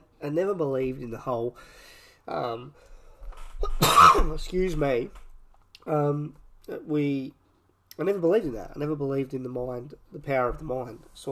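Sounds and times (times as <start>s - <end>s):
speech: 0.2s - 2.9s, 3.6s - 5.2s, 5.8s - 7.4s, 8.0s - 11.3s
man coughing after water went down the wrong way: 3.6s - 4.5s.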